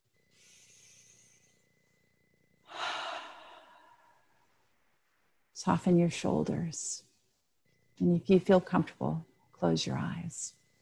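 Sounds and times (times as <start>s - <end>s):
faint steady hum: 0.0s - 10.8s
deep breath: 0.3s - 2.0s, 2.7s - 4.6s
speech: 5.6s - 7.1s, 8.0s - 10.6s.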